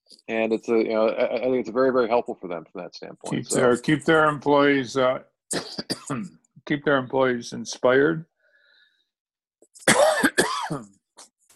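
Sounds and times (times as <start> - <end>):
speech: 0.1 - 8.3, 10.7 - 11.0
harsh coughs: 5.5 - 6.4, 9.8 - 11.0.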